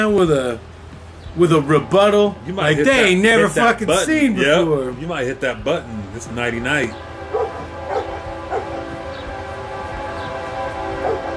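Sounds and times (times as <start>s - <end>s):
speech: 0.0s - 0.7s, 1.3s - 7.1s
train rumbling past: 0.0s - 11.3s
dog barking: 7.3s - 8.7s.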